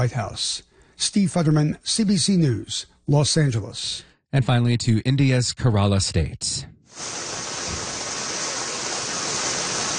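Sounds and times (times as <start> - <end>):
speech: 0.0 - 7.4
heavy torrential rain pouring: 6.9 - 9.9.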